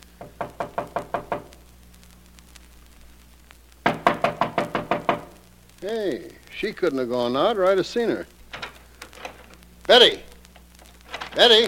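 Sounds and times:
knocking on a door: 0:00.2 - 0:01.5, 0:03.8 - 0:05.3
speech: 0:05.8 - 0:08.4, 0:09.9 - 0:10.3, 0:11.4 - 0:11.6.

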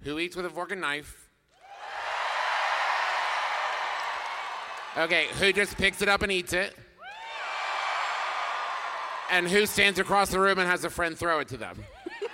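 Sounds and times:
speech: 0:00.0 - 0:01.3, 0:05.0 - 0:06.9, 0:09.3 - 0:12.2
crowd cheering in answer to a poll: 0:01.6 - 0:06.3, 0:07.0 - 0:10.5
laughter: 0:11.8 - 0:12.3.

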